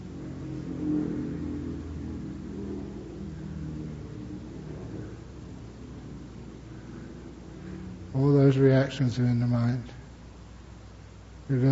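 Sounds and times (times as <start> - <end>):
motorbike engine revving and rumbling as it passes: 0.0 - 8.2
speech: 8.2 - 9.9, 11.5 - 11.7.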